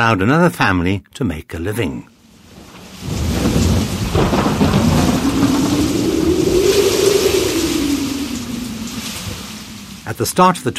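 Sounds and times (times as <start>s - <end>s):
speech: 0.0s - 2.1s, 10.1s - 10.7s
heavy rain pouring in a thunderstorm: 2.1s - 10.7s
deep thunder rumbling: 2.2s - 10.7s
low howling tone through the storm: 3.8s - 10.7s.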